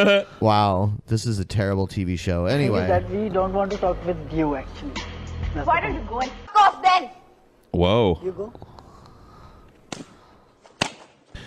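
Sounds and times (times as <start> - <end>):
speech: 0.0 - 8.8
woman slapping a man hard across the face: 9.9 - 10.2, 10.8 - 11.1.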